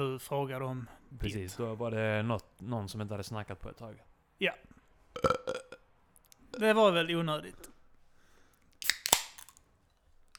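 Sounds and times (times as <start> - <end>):
speech: 0.0 - 5.6, 6.6 - 7.7
beer can cracked open with click, pop and fizzing hiss: 8.8 - 9.7.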